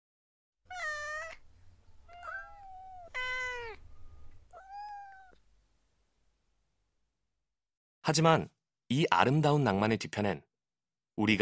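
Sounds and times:
cat meowing: 0.7s - 5.4s
low steady hum: 1.3s - 7.1s
speech: 8.1s - 10.5s, 11.2s - 11.4s.

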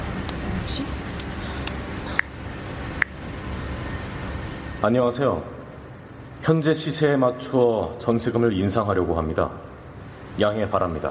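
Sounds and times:
commuter bus engine rumble and road noise: 0.0s - 8.2s
speech: 0.7s - 1.0s, 4.8s - 5.6s, 6.4s - 9.6s, 10.4s - 11.0s.

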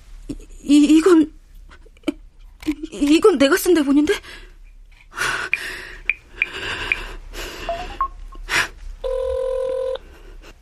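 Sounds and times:
speech: 0.3s - 1.4s, 3.0s - 4.5s
quick heavy gasping breaths: 4.2s - 7.9s
steady electronic telephone ring tone: 7.7s - 8.2s, 9.1s - 10.0s
telephone keypad beeps dialing a number: 7.7s - 8.2s.

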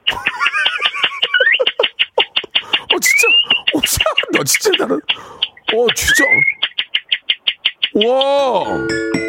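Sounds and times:
laughter: 0.1s - 5.1s
person whistling and chirping in imitation of mountain birdsong: 2.7s - 3.8s, 6.0s - 6.7s
speech: 3.9s - 6.5s, 8.0s - 9.1s.

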